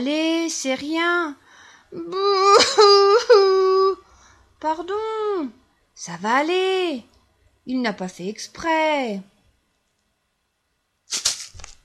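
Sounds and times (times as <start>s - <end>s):
speech: 0.0s - 4.0s, 4.6s - 7.1s, 7.7s - 9.3s
person wailing: 2.0s - 4.0s.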